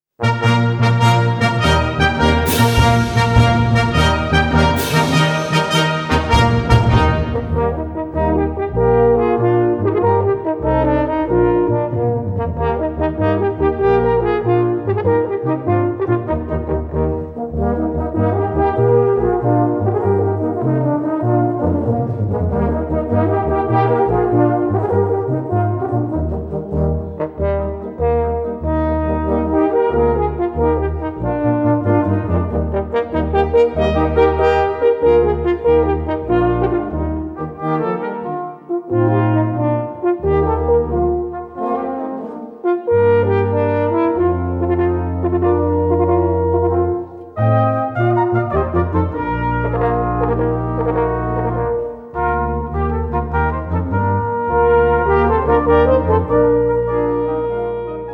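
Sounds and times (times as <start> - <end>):
horn and brass playing in E-flat major: 0.2 - 58.1.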